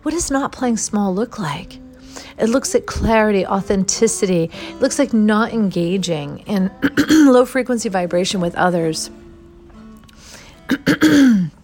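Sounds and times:
speech: 0:00.0 - 0:09.2, 0:10.7 - 0:11.5
person clearing throat: 0:06.8 - 0:07.3, 0:10.7 - 0:11.6.

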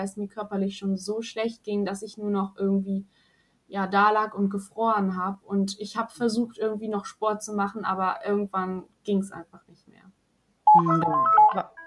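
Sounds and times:
speech: 0:00.0 - 0:10.0, 0:10.8 - 0:11.8
short electronic telephone beeps: 0:10.7 - 0:11.8.

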